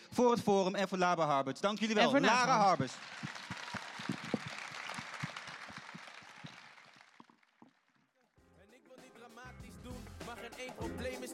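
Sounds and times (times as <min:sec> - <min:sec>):
speech: 0:00.2 - 0:03.3
audience applause: 0:02.1 - 0:08.2.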